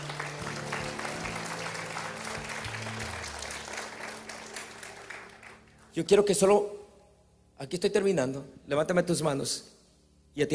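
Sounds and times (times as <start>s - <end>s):
sustained applause from a large audience: 0.0s - 5.9s
speech: 6.0s - 6.8s, 7.6s - 9.8s, 10.4s - 10.5s.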